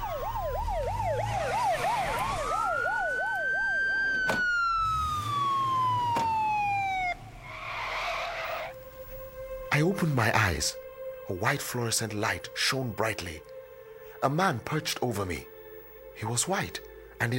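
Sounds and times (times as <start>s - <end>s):
emergency vehicle sirens yelping and wailing: 0.0s - 9.7s
speech: 10.2s - 13.5s, 14.2s - 15.5s, 16.2s - 17.3s.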